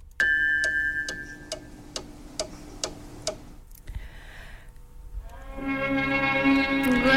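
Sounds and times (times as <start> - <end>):
faint steady hum: 0.0 - 7.1
studio clock ticking: 0.6 - 3.5.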